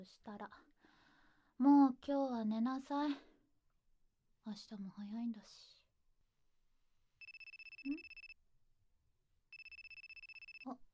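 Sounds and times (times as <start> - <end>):
speech: 0.0 - 0.7, 1.6 - 3.3, 4.4 - 5.8, 7.8 - 8.1, 10.6 - 10.8
mobile phone ringing: 7.2 - 8.4, 9.5 - 10.8.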